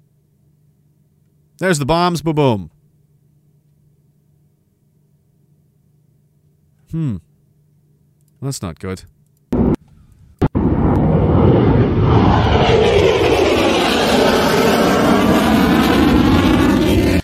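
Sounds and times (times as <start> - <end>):
speech: 1.6 - 2.8, 6.9 - 7.3, 8.4 - 9.1
jet engine roaring: 10.4 - 17.2.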